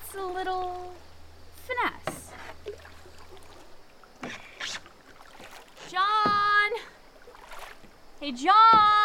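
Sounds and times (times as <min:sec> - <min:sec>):
water sloshing: 0:00.0 - 0:09.0
speech: 0:00.2 - 0:01.0, 0:08.3 - 0:09.0
paddle strokes splashing through water from a small boat: 0:02.0 - 0:08.0.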